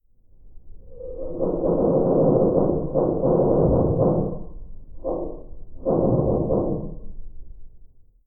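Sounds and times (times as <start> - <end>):
creaking in a nuclear mine: 0.9 - 7.1.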